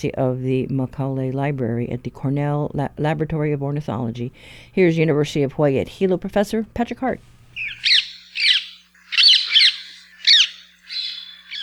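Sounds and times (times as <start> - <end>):
speech: 0.0 - 8.0
bright green rose-ringed parakeets squawking: 7.6 - 11.6.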